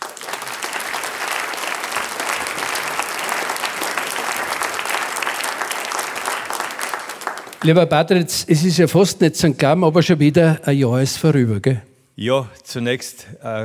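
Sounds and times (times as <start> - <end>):
large audience applauding in a hall: 0.0 - 8.0
speech: 7.6 - 13.6.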